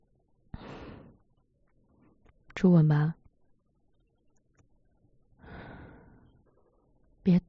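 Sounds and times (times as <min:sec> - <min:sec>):
speech: 0:02.6 - 0:03.2, 0:07.3 - 0:07.4
sharp breathy exhale close to the ear: 0:05.4 - 0:06.3.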